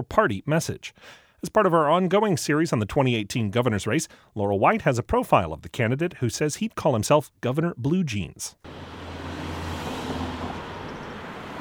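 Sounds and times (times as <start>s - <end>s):
speech: 0.0s - 9.0s
traffic of car engines and tires rushing past on a busy street: 8.6s - 11.5s.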